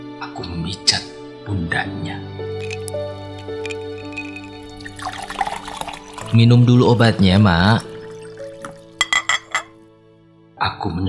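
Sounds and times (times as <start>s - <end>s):
speech: 0.2s - 3.6s, 6.3s - 7.9s
water poured into a glass: 2.5s - 9.7s.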